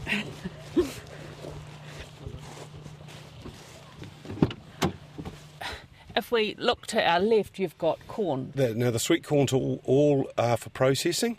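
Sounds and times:
rustling movement of people climbing into a car: 0.0 - 6.0
car engine hum: 0.0 - 7.2
car doors shutting: 3.4 - 5.5
speech: 6.2 - 11.3.

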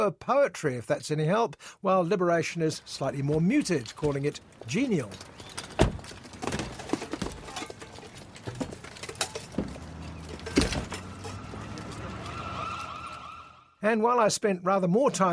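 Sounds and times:
speech: 0.0 - 5.7, 13.8 - 15.3
street traffic: 2.6 - 13.8
footsteps of a crowd walking on a hard street: 3.0 - 10.5
wailing siren-like tone: 10.7 - 13.8.

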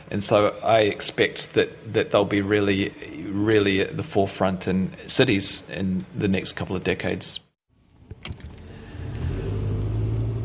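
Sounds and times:
speech: 0.1 - 7.4
car engine and road rumble driving through the Manawatu countryside: 7.8 - 10.4.

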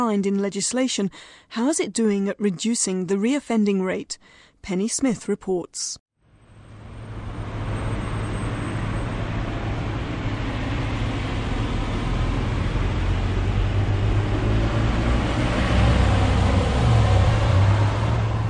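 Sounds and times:
speech: 0.0 - 6.0
broad low engine drone in a shopping mall car park: 6.2 - 18.4.

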